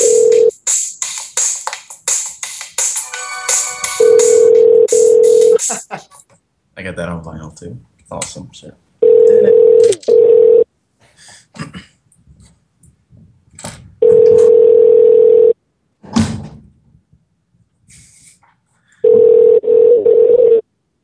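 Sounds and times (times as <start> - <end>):
telephone ringback tone as a call connects: 0.0 - 0.5, 3.9 - 5.6, 9.0 - 10.7, 14.0 - 15.6, 19.0 - 20.6
speech: 7.0 - 8.9.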